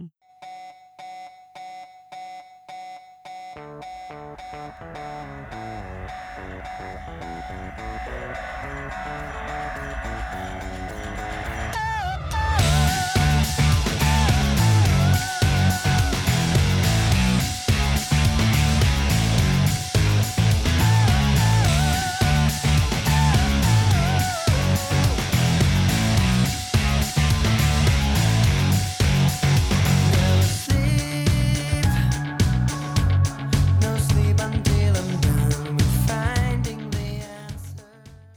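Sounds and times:
thick distorted guitars: 3.6s - 37.8s
speech: 4.4s - 12.0s
melodic sung vocal line: 4.8s - 18.2s, 20.3s - 26.8s, 29.8s - 38.1s
Finnish emo rock song: 6.7s - 38.2s
pounding drums: 8.4s - 37.2s.

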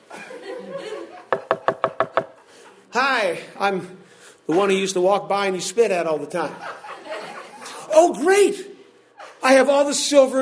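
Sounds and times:
laughter: 0.0s - 2.9s, 6.4s - 8.0s
knocking on a door: 1.3s - 2.3s
speech: 3.0s - 6.8s, 8.0s - 8.7s, 9.4s - 10.3s.

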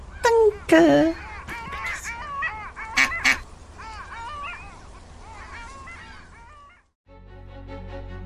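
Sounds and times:
speech: 0.7s - 1.2s
flock of ducks quacking and squawking while being fed bread: 1.0s - 6.9s.

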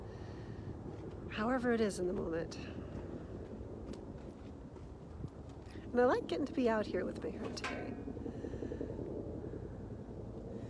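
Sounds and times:
helicopters flying: 0.0s - 10.6s
speech: 1.3s - 2.9s, 6.0s - 8.1s.

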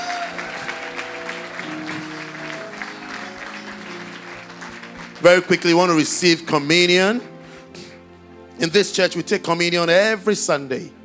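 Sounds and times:
church audience clapping: 0.0s - 6.4s
sustained organ or keyboard tones: 0.0s - 9.1s
speech: 5.2s - 7.3s, 8.6s - 11.0s.

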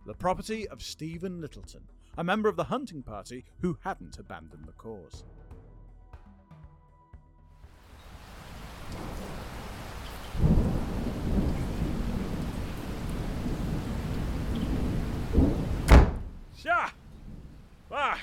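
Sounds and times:
speech: 0.1s - 5.4s, 16.6s - 17.0s, 17.9s - 18.2s
steady rain hissing: 7.7s - 18.2s
low rumbling thunder: 8.9s - 16.4s, 17.0s - 17.8s
sharp thunderclap with ringing whistling tail: 10.3s - 16.4s.

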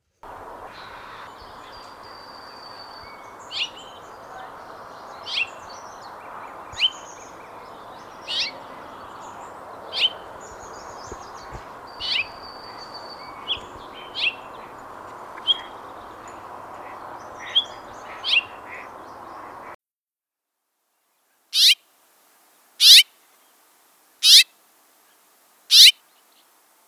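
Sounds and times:
steady hiss: 0.0s - 19.8s, 20.7s - 26.8s
house finch giving sharp clear chirps: 0.3s - 19.7s, 21.6s - 21.8s, 22.8s - 23.0s, 24.2s - 24.4s, 25.7s - 25.9s.

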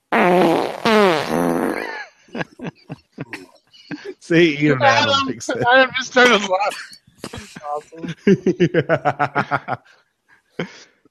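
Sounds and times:
short sputtering fart noises: 0.1s - 1.9s
person blowing a raspberry imitating a fart: 0.1s - 3.4s
laughter: 1.8s - 6.5s, 7.2s - 9.9s
speech: 4.3s - 7.0s, 7.7s - 10.0s.

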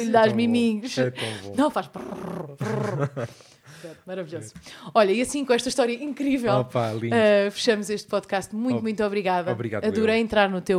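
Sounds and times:
speech: 0.0s - 10.7s
person imitating a cat's purr with a low rumbling voice: 1.9s - 3.2s
laughter: 2.6s - 3.5s.

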